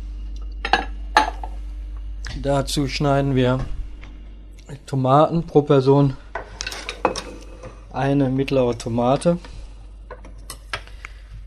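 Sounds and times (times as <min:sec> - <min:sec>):
white ceramic serving bowls clinking together: 0:00.6 - 0:01.6, 0:06.4 - 0:07.9
speech: 0:02.4 - 0:03.8, 0:04.7 - 0:06.2, 0:08.0 - 0:09.5.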